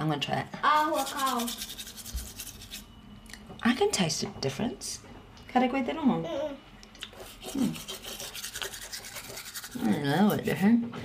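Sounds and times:
speech: 0:00.1 - 0:01.9, 0:03.6 - 0:06.6, 0:07.5 - 0:08.0, 0:09.7 - 0:11.0
soft bamboo toothbrush bristles scrubbing a tongue: 0:00.7 - 0:02.8, 0:07.0 - 0:10.6.

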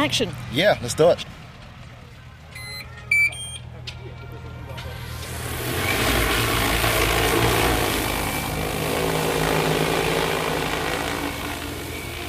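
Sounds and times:
speech: 0:00.0 - 0:01.4
short electronic beeps: 0:02.6 - 0:03.6
large agricultural spray drone's propellers whirring: 0:04.6 - 0:12.2.

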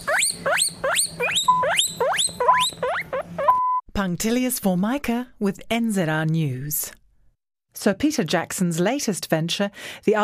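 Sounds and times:
guinea pig squeaking: 0:00.0 - 0:03.7
speech: 0:04.0 - 0:07.0, 0:07.8 - 0:10.2.

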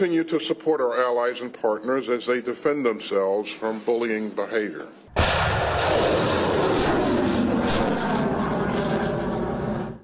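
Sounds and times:
speech: 0:00.0 - 0:05.0
anti-ship missiles being fired by Japanese units during a military exercise: 0:05.1 - 0:10.0.

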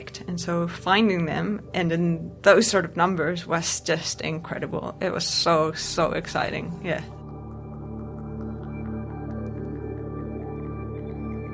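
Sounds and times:
speech: 0:00.0 - 0:07.2
foraging sperm whale clicks on a directional hydrophone: 0:07.1 - 0:11.3.

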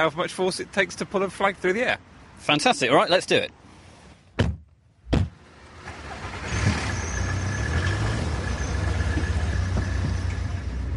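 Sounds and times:
speech: 0:00.0 - 0:03.6
road noise: 0:00.0 - 0:10.9
sharp thuds: 0:04.4 - 0:05.4
car engine accelerating while driving on the A505 near Duxford: 0:05.6 - 0:10.9.

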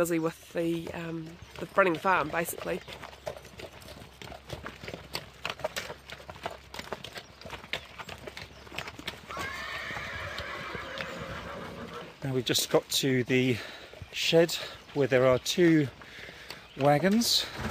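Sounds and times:
speech: 0:00.0 - 0:03.2, 0:12.3 - 0:17.6
working farm horse hooves clip-clopping on a hard surface: 0:00.0 - 0:17.6
working farm horse whinnying: 0:09.2 - 0:12.2.

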